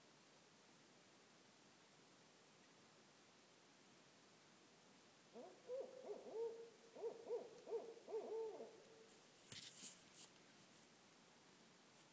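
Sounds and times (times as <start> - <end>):
barred owl giving low wavering hoots: 5.4 - 9.1.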